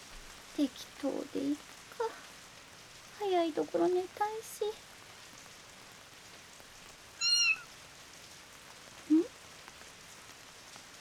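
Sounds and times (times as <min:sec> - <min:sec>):
soft steady hiss: 0:00.0 - 0:10.9
speech: 0:00.6 - 0:02.2, 0:03.2 - 0:04.9
short low chirping squeak: 0:07.2 - 0:07.6
kitten meowing: 0:07.2 - 0:07.7.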